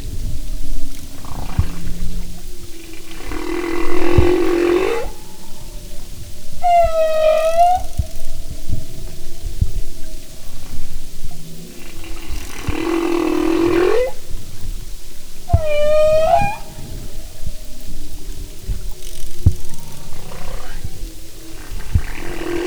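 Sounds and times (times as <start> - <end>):
humpback whale song: 0.0 - 22.6.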